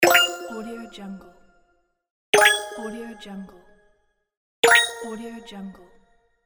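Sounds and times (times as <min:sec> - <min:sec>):
space game prize sound: 0:00.0 - 0:00.6, 0:02.4 - 0:02.9, 0:04.6 - 0:05.1.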